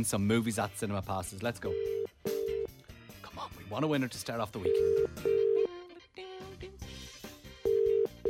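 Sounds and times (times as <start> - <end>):
speech: 0.0 - 2.1, 3.4 - 5.3
telephone ring tones of a call to a radio listener: 1.7 - 2.7, 4.6 - 5.7, 7.6 - 8.2.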